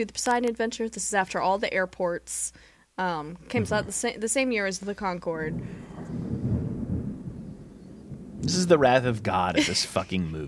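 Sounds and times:
speech: 0.0s - 6.3s, 8.5s - 10.4s
deep rolling rumble of thunder: 5.0s - 10.0s.

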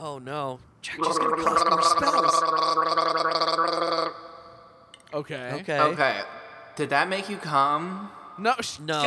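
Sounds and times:
speech: 0.0s - 3.5s, 5.2s - 9.0s
human throat gargle: 1.0s - 4.4s.

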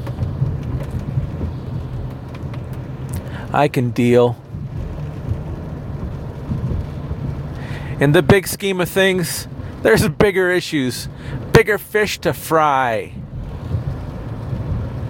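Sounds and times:
low rumbling hum: 0.0s - 12.5s, 13.1s - 15.0s
steady rain hissing: 0.0s - 15.0s
speech: 3.5s - 4.4s, 8.0s - 13.2s.

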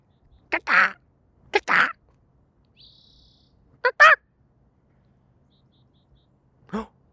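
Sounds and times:
person imitating bird calls: 0.5s - 2.0s, 6.7s - 7.0s.

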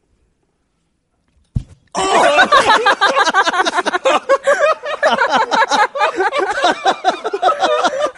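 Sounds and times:
microphone arm slamming into someone's face: 1.5s - 2.0s
loud startled cry: 2.0s - 2.8s
laughter: 2.0s - 8.1s.

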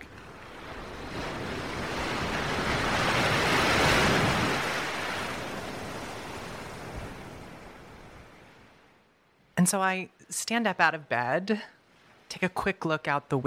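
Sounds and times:
large ocean wave crashing against a boat: 0.0s - 8.8s
wind: 0.0s - 13.4s
speech: 9.6s - 13.4s.

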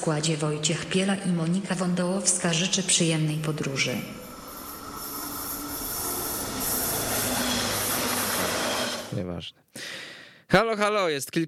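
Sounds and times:
speech: 0.0s - 4.3s, 9.4s - 11.4s
train departing from the track: 0.0s - 9.2s
squealing train wheels: 2.5s - 9.1s.

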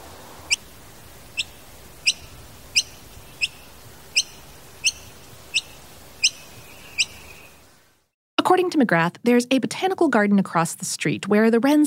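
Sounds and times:
faint hiss: 0.0s - 8.1s
noisy miner chirping: 1.3s - 7.7s
speech: 8.5s - 11.8s.

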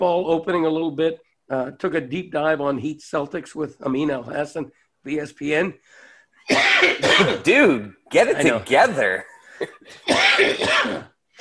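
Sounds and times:
speech: 0.0s - 11.1s
coughing and throat clearing: 6.4s - 7.6s, 9.5s - 11.4s.

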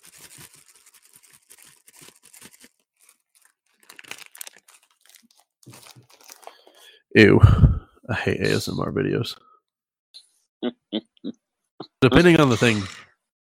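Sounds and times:
Cheetos snack bag crinkling: 0.0s - 6.9s
speech: 7.1s - 9.4s, 12.2s - 13.0s.

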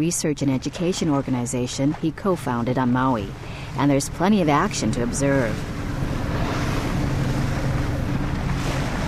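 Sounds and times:
speech: 0.0s - 5.8s
engine of a 20-foot-long research boat droning on open water: 0.0s - 9.0s
wash of waves on open water: 0.0s - 9.0s
constant wind buffeting on open water: 2.1s - 9.0s.

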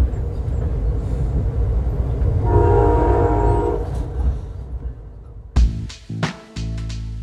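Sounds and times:
train running along the California coastline heard from a passenger seat: 0.0s - 5.6s
train horn blaring a sustained tone: 2.4s - 4.3s.

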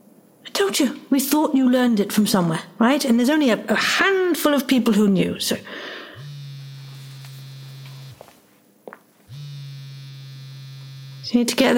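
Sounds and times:
speech: 0.6s - 5.9s, 11.3s - 11.7s
cell phone vibrating: 6.0s - 8.3s, 9.3s - 11.4s.

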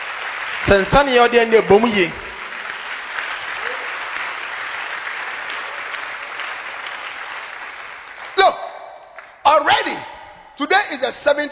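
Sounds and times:
audience clapping hands: 0.0s - 9.4s
speech: 0.6s - 2.2s, 10.6s - 11.5s.

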